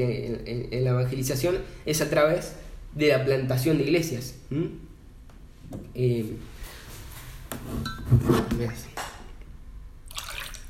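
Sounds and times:
speech: 0:00.0 - 0:04.9, 0:05.7 - 0:06.5, 0:07.6 - 0:08.9
glass or bottle clinking: 0:07.8 - 0:08.1
person gulping water: 0:10.1 - 0:10.6
water sloshing: 0:10.1 - 0:10.6.

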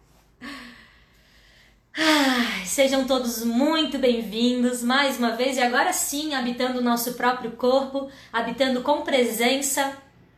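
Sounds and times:
deep breath in: 0:00.4 - 0:02.7
speech: 0:02.8 - 0:10.0.

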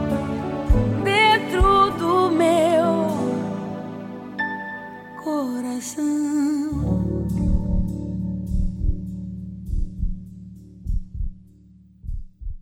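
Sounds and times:
sustained shimmering chord closing a pop ballad: 0:00.0 - 0:06.1
soft deep thumps in pairs: 0:07.4 - 0:09.1, 0:09.7 - 0:12.5.

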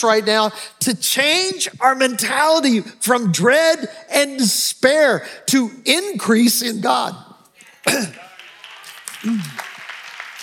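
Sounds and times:
speech: 0:00.0 - 0:08.2, 0:09.2 - 0:09.7
person clearing throat during a church sermon: 0:07.9 - 0:08.3.

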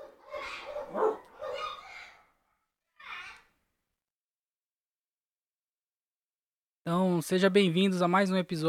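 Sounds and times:
dog barking: 0:00.0 - 0:02.3
speech: 0:06.9 - 0:08.6.

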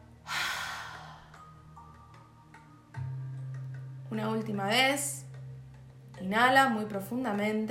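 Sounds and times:
deep exhale during a guided breathing exercise: 0:00.3 - 0:01.6
speech: 0:04.1 - 0:05.2, 0:06.2 - 0:07.6.

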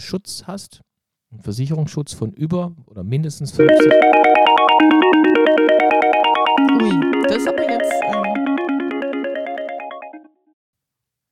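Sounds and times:
speech: 0:00.0 - 0:05.9
telephone ringing with a melodic ringtone: 0:03.6 - 0:10.2.

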